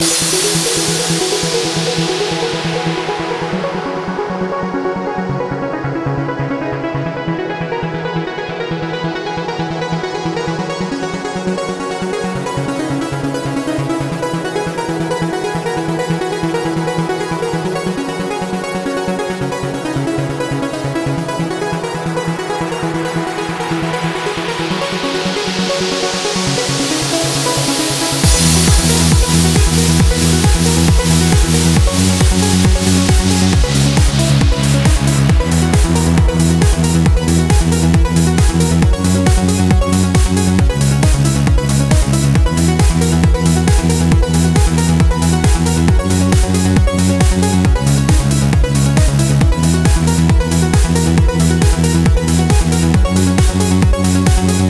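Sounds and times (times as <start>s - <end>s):
electronic dance music riffs: 0.0s - 54.6s.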